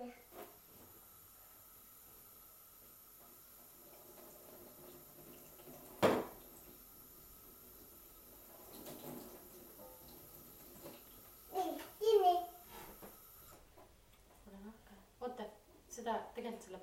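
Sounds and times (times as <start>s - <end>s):
water running from a tap: 1.1s - 13.6s
speech: 16.0s - 16.8s.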